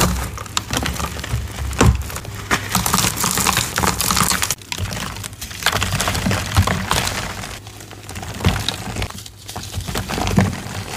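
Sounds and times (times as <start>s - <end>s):
gym chalk being crushed: 0.0s - 10.9s.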